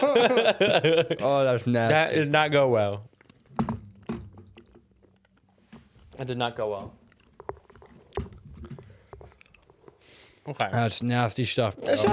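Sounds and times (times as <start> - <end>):
laughter: 0.0 - 1.6
speech: 0.0 - 3.1, 6.2 - 7.0, 10.4 - 12.1
wet chewing and smacking of hard gum: 3.0 - 5.6, 7.0 - 10.0.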